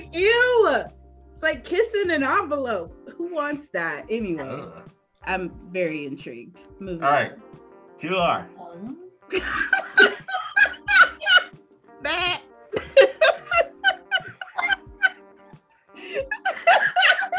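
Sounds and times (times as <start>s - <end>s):
speech: 0.0s - 7.4s, 8.0s - 10.4s, 12.0s - 12.8s
person imitating a sheep bleating: 4.4s - 4.8s
laughter-like bursts: 9.3s - 11.5s, 12.7s - 15.2s, 16.0s - 17.3s.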